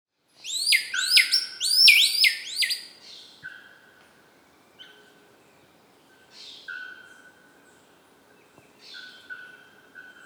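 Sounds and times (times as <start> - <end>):
birds singing in tropical forest on Ilha Grande, Brazil: 0.4 - 2.9.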